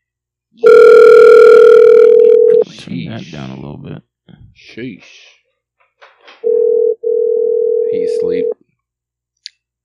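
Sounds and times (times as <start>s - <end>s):
electronic ringback tone of an outgoing phone call: 0.6s - 2.6s, 6.4s - 8.5s
speech: 3.2s - 5.3s, 8.0s - 8.6s.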